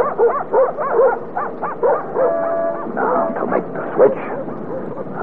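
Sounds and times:
dogs barking and whimpering: 0:00.0 - 0:03.3, 0:04.3 - 0:05.1.

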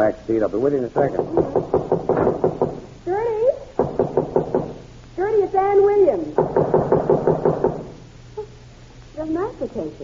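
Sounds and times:
speech: 0:00.0 - 0:01.6, 0:05.5 - 0:06.5, 0:09.6 - 0:10.0
knocking on a door: 0:01.1 - 0:02.9, 0:03.8 - 0:04.8, 0:06.3 - 0:08.0.

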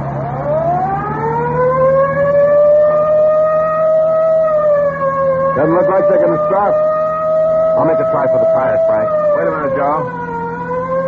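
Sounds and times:
police car engine rumble: 0:00.0 - 0:11.0
police car siren wailing: 0:00.0 - 0:11.0
speech: 0:05.6 - 0:06.9, 0:07.8 - 0:10.2.

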